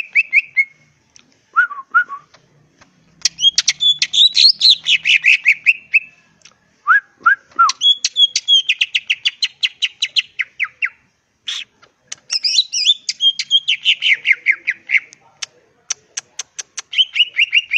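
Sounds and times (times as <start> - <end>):
greater green leafbird song: 0.0 - 0.9, 3.2 - 6.2, 6.8 - 11.7, 12.3 - 15.2, 16.8 - 17.7.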